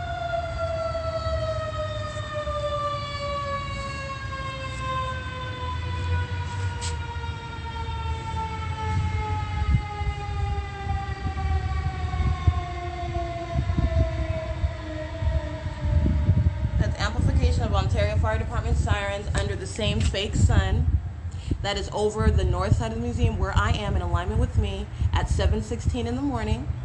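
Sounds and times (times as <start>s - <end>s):
fire department siren wailing: 0.0s - 19.5s
speech: 18.2s - 20.9s, 21.6s - 26.7s.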